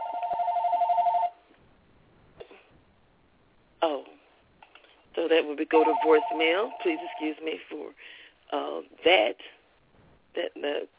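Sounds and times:
telephone ringing with a warbling electronic trill: 0.0s - 1.4s, 5.7s - 7.5s
speech: 5.3s - 9.6s, 10.4s - 10.9s.

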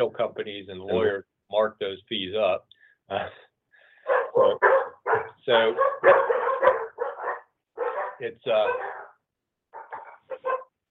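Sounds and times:
speech: 0.0s - 3.4s, 5.5s - 6.3s, 8.2s - 8.9s
faint dogs barking at a house: 3.9s - 10.8s.

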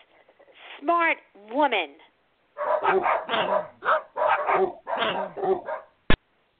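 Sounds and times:
speech: 0.8s - 2.1s, 2.8s - 5.8s
dog barking yappy barks: 2.6s - 6.0s.

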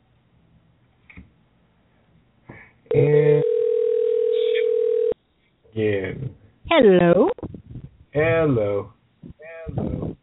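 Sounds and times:
speech: 2.9s - 3.2s, 5.8s - 7.4s, 8.2s - 8.9s
telephone dial tone while calling someone back: 2.9s - 5.2s.

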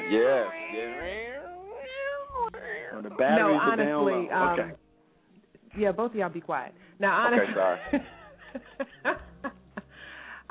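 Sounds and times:
violin screeching and wailing in sliding wavering pitches: 0.0s - 4.8s
speech: 0.1s - 1.3s, 2.9s - 4.8s, 5.7s - 9.6s
laughter: 3.1s - 4.7s, 7.2s - 9.9s.

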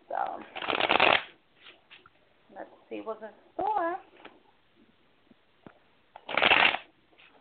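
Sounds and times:
speech: 0.2s - 0.8s, 2.6s - 4.1s
deck of tarot cards being shuffled: 0.5s - 2.1s, 6.2s - 7.3s.

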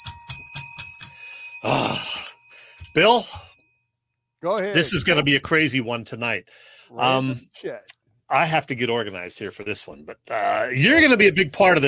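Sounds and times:
bell ringing: 0.0s - 4.0s
speech: 1.6s - 2.2s, 3.0s - 3.5s, 4.4s - 11.8s.

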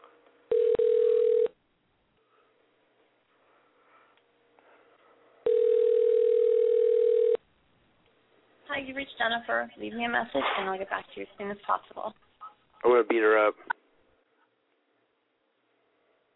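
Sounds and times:
telephone calling tone while someone is being rung: 0.5s - 1.6s, 5.5s - 7.4s
speech: 8.8s - 13.8s.

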